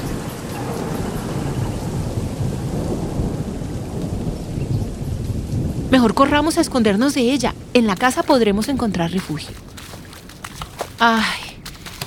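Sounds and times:
deep rolling thunder: 0.0s - 7.9s
steady heavy rain in a thunderstorm: 0.0s - 12.0s
speech: 5.9s - 9.7s, 11.0s - 11.4s.

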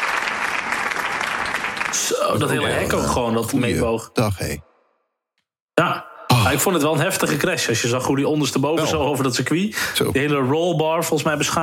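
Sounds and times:
applause: 0.0s - 2.6s
speech: 2.0s - 4.7s, 5.8s - 11.6s.

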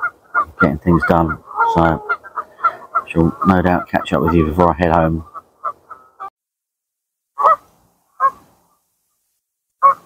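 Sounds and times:
geese honking: 0.0s - 6.3s, 7.4s - 8.4s, 9.8s - 10.0s
speech: 0.6s - 2.1s, 3.1s - 5.3s.

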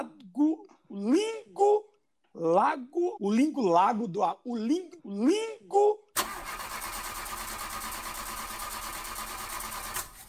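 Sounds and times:
speech: 2.4s - 6.0s
car engine cranking and starting: 6.2s - 10.2s.

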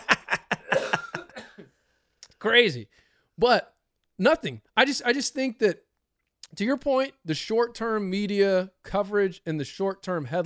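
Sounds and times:
laughter: 0.0s - 1.3s
short hacking coughs: 0.4s - 1.8s
speech: 2.4s - 5.8s, 6.4s - 10.4s.

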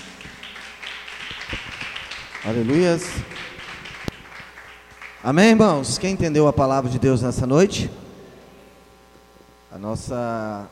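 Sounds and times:
audience clapping in praise: 0.0s - 6.0s
speech: 2.4s - 3.3s, 5.2s - 8.0s, 9.8s - 10.7s.

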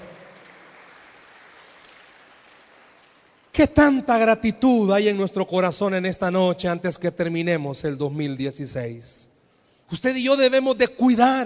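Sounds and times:
audience applause: 0.0s - 3.6s
speech: 3.6s - 9.3s, 9.9s - 11.4s.

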